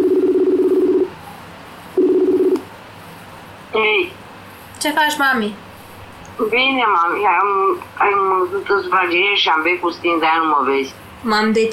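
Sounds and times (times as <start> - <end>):
outgoing phone call ringing tone: 0.0 - 1.1, 2.0 - 2.6
speech: 4.8 - 5.7, 6.4 - 11.7.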